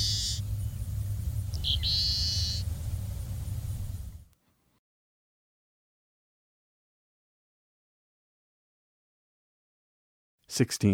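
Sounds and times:
dusky seaside sparrow singing buzzy phrases and trill: 0.0 - 4.3
low rumble of recording hiss: 0.0 - 4.8.

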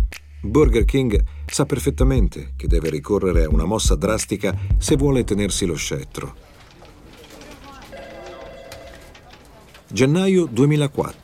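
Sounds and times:
speech: 0.4 - 6.5, 9.9 - 11.2
indistinct voices: 4.8 - 11.2
mobile phone ringing in an advertising agency office in Miami: 7.9 - 9.3.

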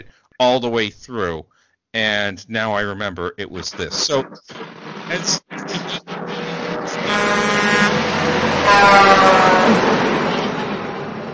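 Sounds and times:
speech: 0.0 - 5.8, 8.7 - 9.9
truck rumbling past a house: 7.4 - 11.3.

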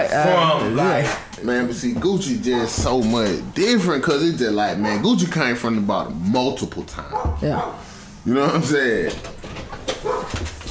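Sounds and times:
speech: 0.0 - 10.3
dog barking: 2.5 - 2.8, 7.1 - 7.8, 10.0 - 10.4.

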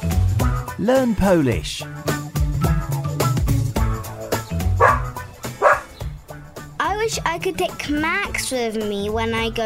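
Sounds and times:
music: 0.0 - 9.6
speech: 0.8 - 2.8, 7.1 - 9.6
dog barking: 4.7 - 6.0.

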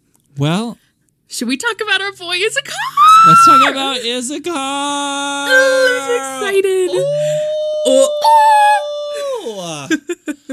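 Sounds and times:
speech: 0.4 - 8.8, 9.5 - 10.5
person howling like a wolf: 5.5 - 9.9.

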